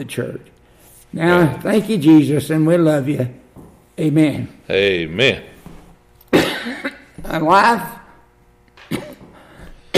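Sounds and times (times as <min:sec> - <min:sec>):
speech: 0:00.0 - 0:03.4, 0:04.0 - 0:05.5, 0:06.6 - 0:08.0
person coughing harshly with a strained voiced rasp: 0:06.3 - 0:07.1, 0:08.8 - 0:09.9.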